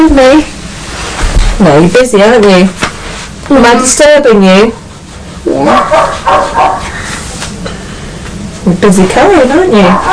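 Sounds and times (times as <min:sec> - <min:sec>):
speech: 0:00.0 - 0:00.6, 0:01.6 - 0:02.9, 0:03.5 - 0:04.8, 0:05.4 - 0:06.9, 0:08.6 - 0:10.1
dog barking: 0:05.6 - 0:07.0, 0:09.8 - 0:10.1.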